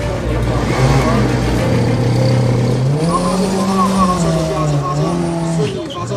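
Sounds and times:
race car engine with a throttle problem droning and revving: 0.2s - 5.9s.

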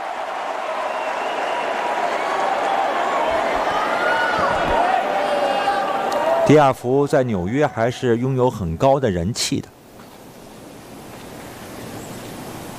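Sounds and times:
large arena crowd in New York cheering and applauding: 0.0s - 6.6s
speech: 6.5s - 9.8s.

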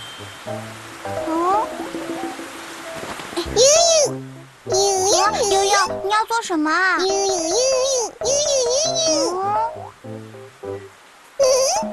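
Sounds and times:
soft steady rain falling: 0.0s - 11.9s
speech: 0.2s - 1.3s, 3.4s - 9.8s
child talking: 1.2s - 1.7s, 3.4s - 4.1s, 4.7s - 9.8s, 11.4s - 11.9s.

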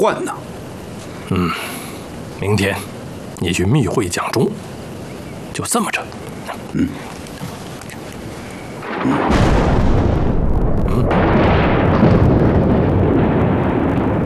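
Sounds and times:
speech: 0.0s - 0.5s, 1.3s - 1.8s, 2.4s - 4.7s, 5.6s - 7.2s, 9.0s - 9.4s
deep rolling thunder: 8.8s - 14.2s.

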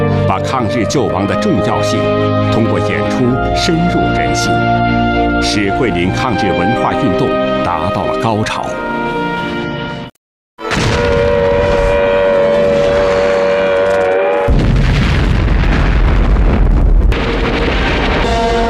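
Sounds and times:
speech: 0.4s - 9.1s
air raid siren wailing: 0.9s - 7.7s, 10.6s - 14.7s, 18.1s - 18.6s
heavy rumbling artillery blasts during the autumn 1944 invasion of Guangxi: 10.6s - 12.0s, 14.5s - 18.6s
sustained roar of explosions and booming impacts: 10.7s - 18.6s.

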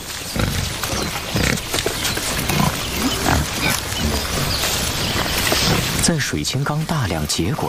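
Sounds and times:
rustling of wild boar foraging on the ground: 0.0s - 7.4s
wild boar grunting while foraging for roots in beech woodland: 0.1s - 6.1s
speech: 6.1s - 7.6s.

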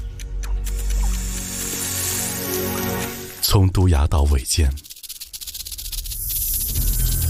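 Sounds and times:
snake hissing: 0.7s - 3.4s, 4.8s - 7.2s
speech: 3.5s - 4.9s.

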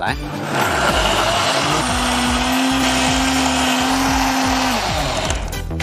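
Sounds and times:
high-speed blender grinding nuts and chili: 0.1s - 5.7s.

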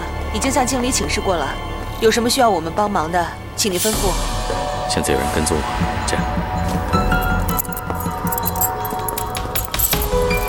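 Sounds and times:
speech: 0.4s - 6.3s
bunch of safe keys jangling as handed over: 7.0s - 10.4s.

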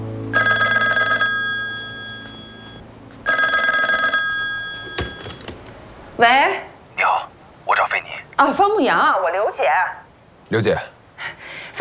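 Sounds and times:
telephone bell ringing: 0.3s - 5.6s
knock of telephone receiver being picked up: 4.8s - 5.8s
speech: 6.2s - 6.7s, 8.0s - 10.9s.

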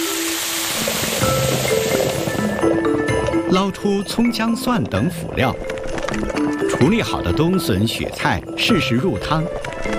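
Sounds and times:
boiling water poured into a pan over frying small yellow croaker: 0.0s - 2.5s
speech: 3.5s - 9.9s.

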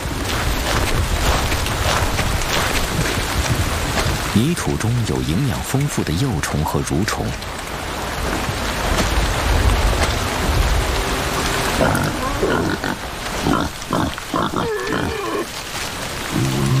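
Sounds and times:
heavy rain falling: 0.0s - 16.7s
water dripping from foliage: 0.0s - 16.7s
speech: 4.4s - 7.6s
wild boars grunting and squealing while squabbling over food: 11.7s - 16.7s.

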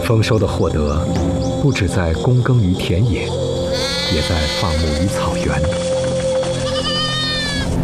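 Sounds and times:
speech: 0.1s - 5.9s
young goat kid bleating: 3.7s - 5.1s, 6.6s - 7.7s.

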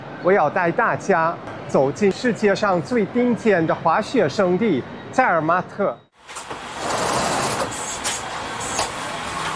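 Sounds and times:
speech: 0.2s - 6.0s
passenger train in Switzerland rolling along rails: 6.3s - 9.5s.

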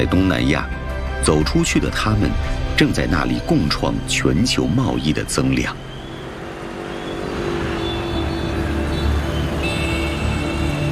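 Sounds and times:
speech: 0.0s - 5.9s
morning traffic of industrial workers in Sihanoukville Special Economic Zone Cambodia: 0.6s - 10.9s
vehicle engines droning and revving: 2.1s - 10.9s
vehicles whining as they stream past: 4.6s - 10.9s.

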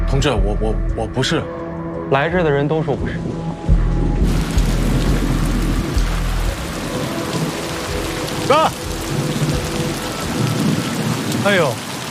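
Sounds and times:
speech: 0.2s - 3.7s, 8.5s - 8.8s, 11.4s - 11.9s
heavy rain: 4.2s - 12.0s
person calling out: 8.4s - 8.9s.

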